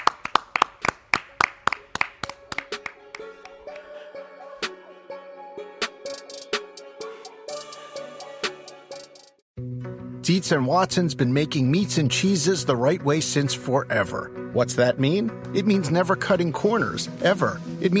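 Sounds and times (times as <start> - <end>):
hands clapping: 0.0 - 3.9
speech: 10.3 - 17.9.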